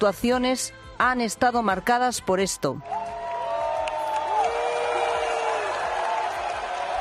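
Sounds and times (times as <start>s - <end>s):
speech: 0.0s - 3.2s
large audience booing at a song contest semifinal in Malmö: 2.9s - 6.9s.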